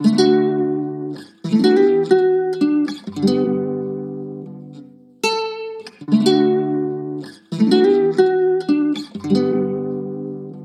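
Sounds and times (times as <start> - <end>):
guitar loop in D at 79 BPM: 0.0 - 10.6.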